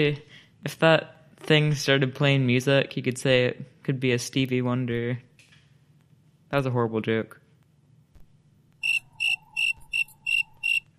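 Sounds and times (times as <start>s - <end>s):
speech: 0.0s - 5.3s, 6.5s - 7.4s
quiet low hum: 7.5s - 10.9s
shrill cricket chirps: 8.8s - 10.9s.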